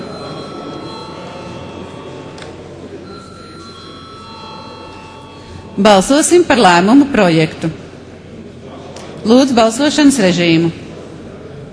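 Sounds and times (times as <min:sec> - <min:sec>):
parliament chamber bell ringing before a vote: 0:00.0 - 0:02.4, 0:03.0 - 0:06.8
low murmur of voices: 0:00.0 - 0:11.7
speech: 0:05.8 - 0:07.8, 0:09.2 - 0:10.8.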